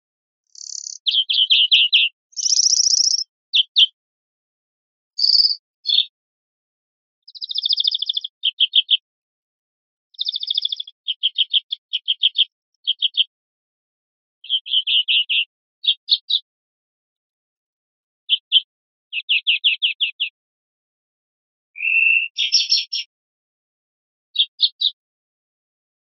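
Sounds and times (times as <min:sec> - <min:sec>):
greenfinch singing: 0:00.5 - 0:04.0, 0:05.2 - 0:06.2, 0:07.3 - 0:09.0, 0:10.2 - 0:13.3, 0:14.4 - 0:16.5, 0:18.3 - 0:20.4, 0:21.8 - 0:23.1, 0:24.4 - 0:25.0.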